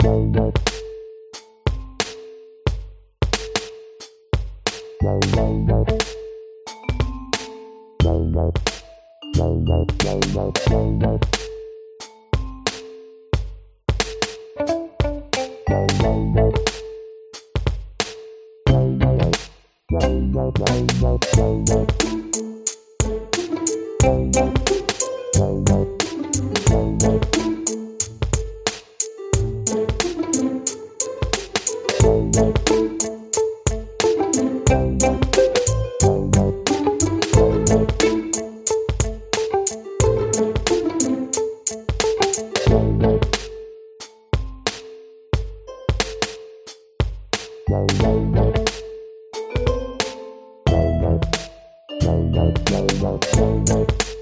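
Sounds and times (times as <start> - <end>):
casual game level music loop: 0.0 - 46.8, 47.4 - 54.2.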